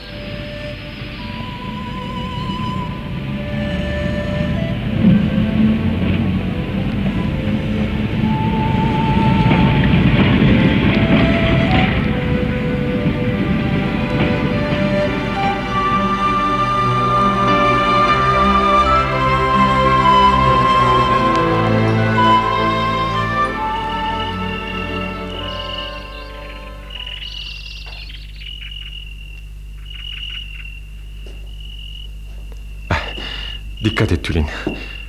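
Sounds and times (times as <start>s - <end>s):
faint metallic squeals of train: 0.0s - 5.9s, 7.4s - 28.1s
train pulling away and rolling along tracks: 0.0s - 28.4s
speech: 34.3s - 34.9s.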